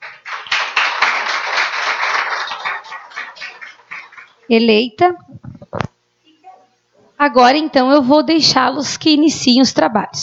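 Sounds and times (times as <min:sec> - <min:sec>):
roomful of people applauding an elected slate: 0:00.0 - 0:04.5
speech: 0:04.5 - 0:05.4, 0:07.2 - 0:10.2.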